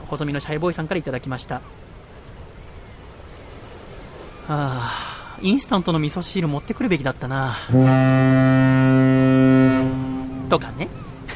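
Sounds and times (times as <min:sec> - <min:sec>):
speech: 0:00.1 - 0:02.0, 0:04.5 - 0:08.8, 0:10.5 - 0:11.3
ship's horn as a ship leaves Yokohama port bound for Singapore: 0:07.7 - 0:11.3.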